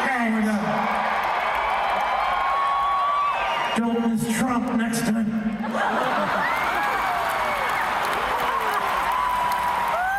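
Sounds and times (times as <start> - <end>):
large crowd cheering and applauding: 0.0 - 4.9, 5.6 - 10.1
overlapping shouts and whoops from crowd: 0.8 - 3.8, 6.3 - 10.1
speech: 3.8 - 6.3
laughter: 5.6 - 7.2.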